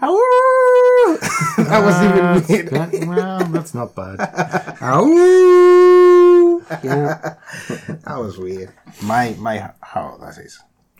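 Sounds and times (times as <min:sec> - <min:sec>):
person mimicking a dog with a howl-like call: 0:00.0 - 0:01.2, 0:05.1 - 0:06.6
laughter: 0:00.5 - 0:05.2, 0:06.5 - 0:08.8
speech: 0:01.7 - 0:10.9.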